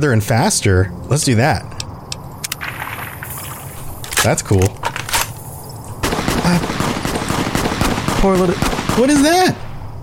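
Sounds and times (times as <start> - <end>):
speech: 0.0 - 1.8, 4.2 - 4.8, 8.2 - 9.6
video game gunfire: 6.0 - 9.6.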